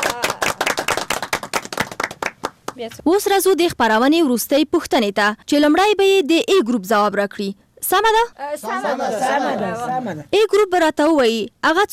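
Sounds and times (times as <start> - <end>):
people clapping for a correct quiz answer: 0.0 - 2.9
speech: 2.8 - 11.9.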